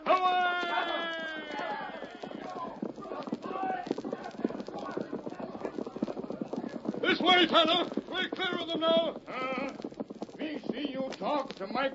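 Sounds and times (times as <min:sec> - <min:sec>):
horses galloping with clip-clopping hooves: 0:00.0 - 0:11.9
speech: 0:07.1 - 0:09.8, 0:10.8 - 0:11.9.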